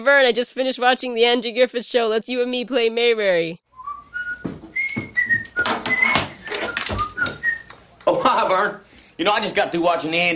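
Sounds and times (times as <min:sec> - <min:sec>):
speech: 0:00.0 - 0:03.6, 0:08.5 - 0:10.3
man whistling a TV theme tune: 0:03.7 - 0:07.8
rustling: 0:03.8 - 0:07.6
soft thumps: 0:04.2 - 0:07.6.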